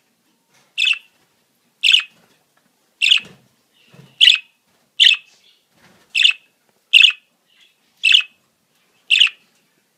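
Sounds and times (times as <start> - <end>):
budgerigar chirping: 0.8 - 1.1, 1.8 - 2.1, 3.0 - 3.3, 4.2 - 5.3, 6.2 - 8.4, 9.1 - 9.4.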